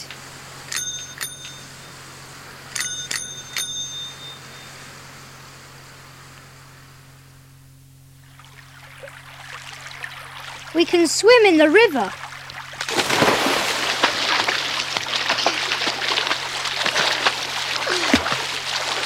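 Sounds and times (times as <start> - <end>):
soft steady hiss: 0.0 - 19.0
bicycle bell ringing outdoors: 0.7 - 2.0, 2.7 - 4.8
speech: 10.8 - 12.2.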